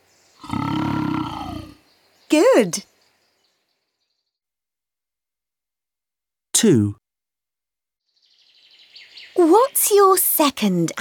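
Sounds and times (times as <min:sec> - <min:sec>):
lion roaring: 0:00.4 - 0:01.8
speech: 0:02.3 - 0:02.9, 0:06.6 - 0:07.0, 0:09.4 - 0:11.0.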